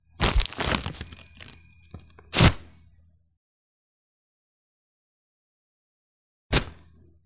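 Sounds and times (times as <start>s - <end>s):
tissue paper pulled from a box: 0.2s - 2.1s.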